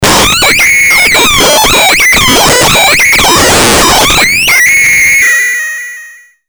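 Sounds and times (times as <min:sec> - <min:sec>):
distorted formant synthesizer: 0:00.0 - 0:06.2.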